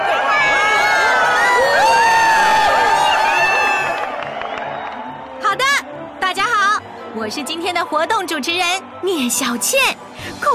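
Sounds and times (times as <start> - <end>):
audience screaming and cheering: 0.0 - 7.0
speech: 7.3 - 10.5.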